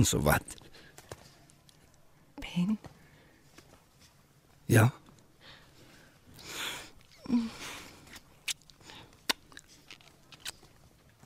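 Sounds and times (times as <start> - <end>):
speech: 0.0 - 0.6, 2.6 - 2.9, 4.7 - 5.0, 7.3 - 7.7
soft breaths: 0.5 - 9.9
lips kissing: 7.0 - 10.8.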